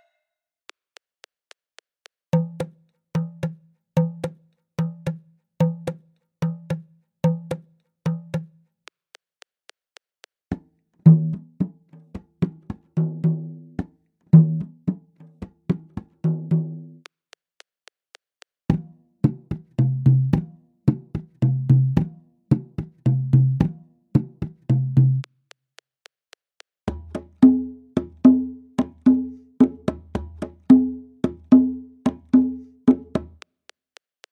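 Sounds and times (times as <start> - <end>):
Bembé rhythm: 2.3 - 8.6, 10.5 - 17.1, 18.7 - 26.1, 26.9 - 34.3.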